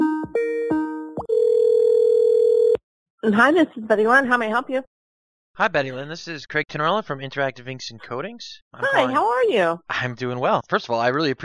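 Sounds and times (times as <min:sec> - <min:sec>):
telephone line ringing before the call connects: 0:01.2 - 0:02.8
speech: 0:03.2 - 0:05.0, 0:05.6 - 0:11.4.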